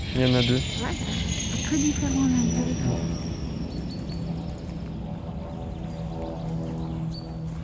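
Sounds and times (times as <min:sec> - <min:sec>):
high chirps: 0:00.0 - 0:04.4
propeller airplane droning overhead: 0:00.0 - 0:07.6
speech: 0:00.2 - 0:03.3.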